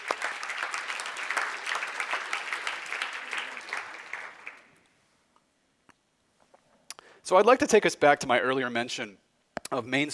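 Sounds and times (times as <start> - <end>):
audience applause at a panel event: 0.0 - 4.8
speech: 7.3 - 10.1.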